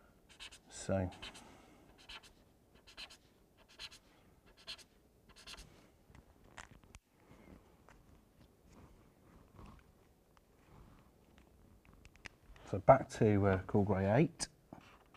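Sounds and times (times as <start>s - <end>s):
marker pen squeaking on paper while reworking tones on a drawing: 0.3s - 0.6s, 2.0s - 5.7s
speech: 0.9s - 1.3s, 12.7s - 14.5s.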